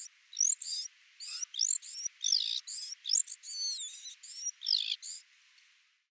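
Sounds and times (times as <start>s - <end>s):
Parus major great tit chattering and whistling: 0.0s - 5.2s.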